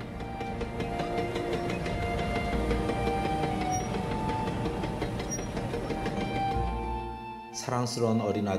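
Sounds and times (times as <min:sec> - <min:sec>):
train rumbling along railway tracks with rhythmic clattering and clicking: 0:00.0 - 0:07.4
faint high metallic squeals: 0:00.4 - 0:06.7
speech: 0:07.7 - 0:08.5.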